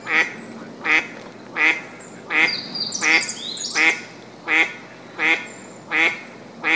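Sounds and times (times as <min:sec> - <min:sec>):
Eastern spot-billed duck giving rasping quacks: 0:00.1 - 0:06.7
small bird brief high twittering: 0:02.1 - 0:04.0.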